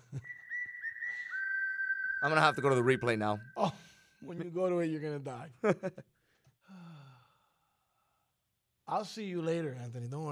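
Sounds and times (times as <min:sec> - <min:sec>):
person whistling: 0:00.0 - 0:03.9
speech: 0:02.2 - 0:06.2, 0:08.9 - 0:10.3.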